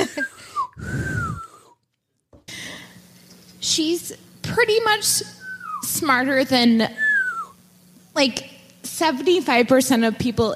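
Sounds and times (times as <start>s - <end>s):
breathy failed attempt at whistling: 0.2s - 1.8s, 5.4s - 6.0s, 7.0s - 7.6s
speech: 3.7s - 7.0s, 8.2s - 10.5s.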